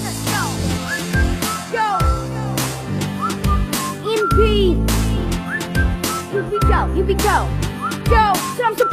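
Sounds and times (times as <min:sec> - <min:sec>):
musical backing of steady bass, chords and sharp percussive hits: 0:00.0 - 0:08.9
person whistling a melody with gliding notes: 0:00.7 - 0:02.3, 0:03.1 - 0:07.0, 0:07.8 - 0:08.9.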